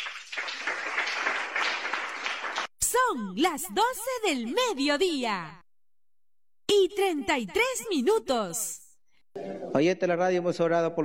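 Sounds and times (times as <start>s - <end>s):
Pentecostal church congregation clapping during a Monday service: 0.0s - 2.8s
speech: 3.1s - 5.6s, 6.7s - 8.8s, 9.7s - 11.0s.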